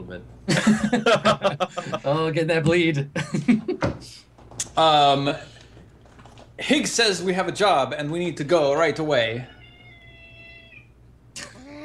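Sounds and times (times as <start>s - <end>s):
speech: 0.1s - 4.2s, 4.8s - 5.5s, 6.6s - 9.6s
laughter: 0.5s - 2.2s, 3.2s - 3.8s
video game cat meowing beside its owner: 9.4s - 11.0s.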